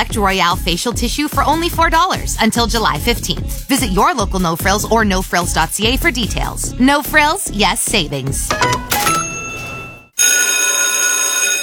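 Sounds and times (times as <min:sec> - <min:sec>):
speech: 0:00.0 - 0:08.8
loud school bell ringing with a metallic clatter: 0:08.5 - 0:11.6.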